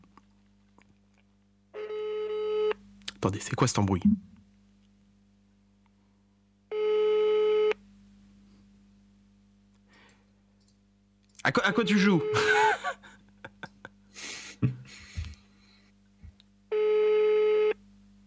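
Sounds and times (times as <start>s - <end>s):
low constant hum: 0.0s - 17.1s
speech: 3.2s - 4.3s, 11.7s - 12.6s
electronic telephone busy-signal tones on an outgoing call: 6.7s - 7.8s, 11.6s - 12.8s, 16.7s - 17.8s
laughter: 12.0s - 15.4s.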